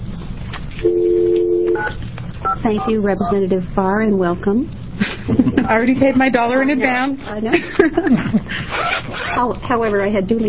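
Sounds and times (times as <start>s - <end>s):
telephone tones as a call is dialed during a public meeting: 0.8s - 3.4s
speech: 2.6s - 10.4s
laughter: 5.0s - 6.2s, 7.5s - 8.7s.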